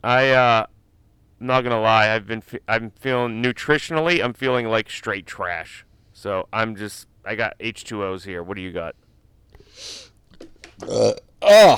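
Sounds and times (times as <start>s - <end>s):
speech: 0.0s - 0.7s, 1.4s - 9.0s, 9.8s - 10.1s, 10.8s - 11.7s
person burping into a microphone: 10.8s - 11.7s.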